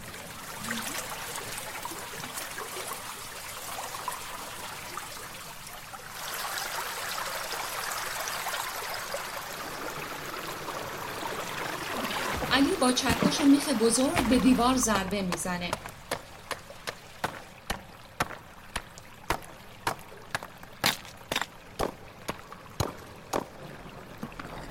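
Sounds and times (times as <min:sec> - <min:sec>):
water pouring down from a tunnel ceiling: 0:00.0 - 0:24.6
speech: 0:12.8 - 0:15.9.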